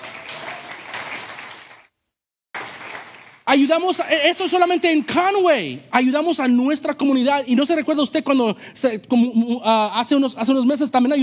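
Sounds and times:
crowd applauding: 0.0 - 1.9, 2.6 - 3.5
speech: 3.5 - 11.2.

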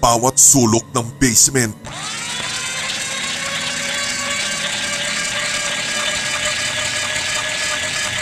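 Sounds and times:
speech: 0.0 - 2.2
bone-grinding machine in a basement crushing bones: 1.8 - 8.2.

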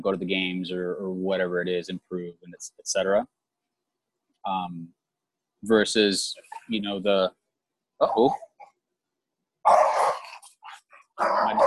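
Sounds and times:
speech: 0.0 - 3.4, 4.4 - 5.0, 5.6 - 7.4, 8.0 - 8.4, 11.2 - 11.6
two dogs barking and growling at each other through a fence: 9.6 - 11.6.

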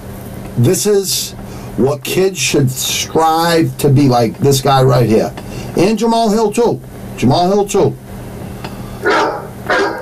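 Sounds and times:
speech: 0.6 - 8.0
dog barking: 9.0 - 10.0.

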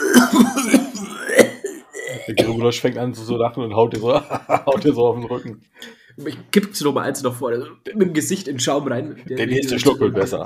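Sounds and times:
person coughing harshly after a gulp of strong beer: 0.0 - 2.6
speech: 0.1 - 0.8, 2.3 - 10.4
laughter: 4.1 - 5.5.

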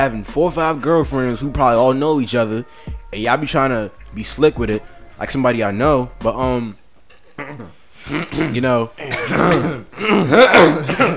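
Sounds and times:
speech: 0.0 - 6.8, 7.5 - 11.1
person clearing throat: 7.2 - 11.1
person coughing: 7.4 - 11.1.

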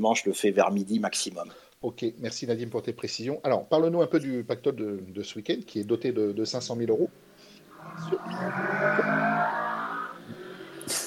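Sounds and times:
speech: 0.0 - 7.2, 7.8 - 9.2
motorcycle accelerating outside: 7.7 - 11.0.

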